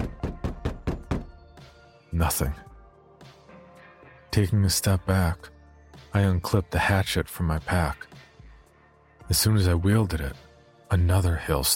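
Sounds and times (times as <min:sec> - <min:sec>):
fist pounding on a wooden cabin door: 0:00.0 - 0:01.4
speech: 0:02.1 - 0:02.7, 0:04.4 - 0:05.5, 0:06.1 - 0:08.1, 0:09.3 - 0:11.7.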